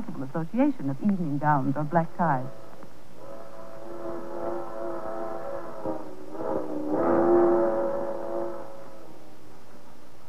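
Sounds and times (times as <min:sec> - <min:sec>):
speech: 0:00.2 - 0:02.6
night freight train locomotive whistle: 0:02.4 - 0:10.0.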